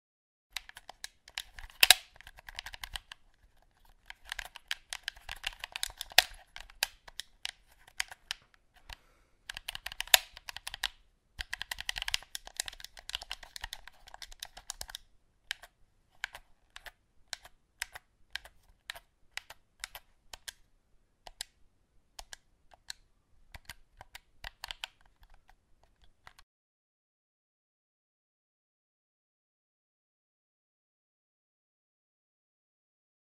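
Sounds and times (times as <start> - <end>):
game controller: 0.6 - 20.6, 21.2 - 21.6, 22.2 - 26.4.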